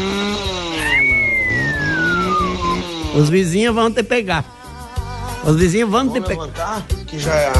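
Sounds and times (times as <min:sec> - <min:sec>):
motorcycle engine revving with a high whine: 0:00.0 - 0:04.2
speech: 0:03.2 - 0:04.6, 0:05.4 - 0:07.5.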